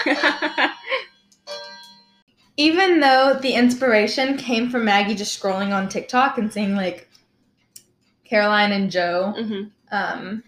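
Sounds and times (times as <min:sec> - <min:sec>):
phone ringtone of bell-like chimes: 0:00.0 - 0:02.2
speech: 0:02.6 - 0:07.1, 0:08.3 - 0:10.4.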